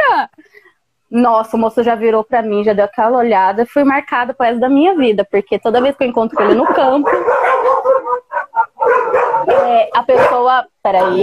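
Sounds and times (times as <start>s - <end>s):
speech: 1.1s - 7.6s, 9.5s - 11.2s
small female pet dog barking: 6.3s - 10.5s.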